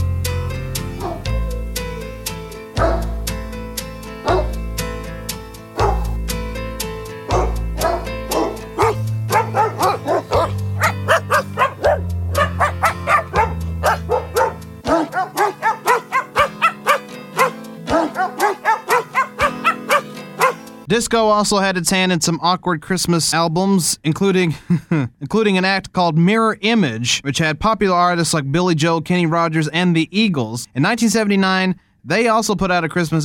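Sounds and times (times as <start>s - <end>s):
steady synth backing: 0.0s - 20.8s
sampled barks from a pack of dogs pitched to play a holiday carol melody: 0.8s - 3.4s, 4.1s - 4.7s, 5.6s - 6.3s, 7.2s - 20.8s
speech: 21.0s - 33.2s.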